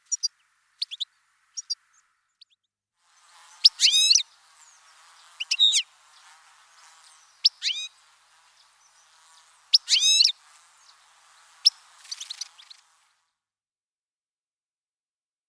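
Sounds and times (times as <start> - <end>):
European goldfinch twittering: 3.2 - 13.1.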